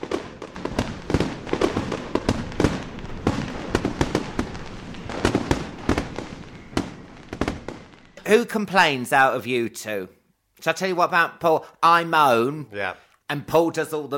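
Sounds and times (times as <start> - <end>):
fireworks bangs and crackles: 0.0 - 8.9
speech: 8.3 - 14.1.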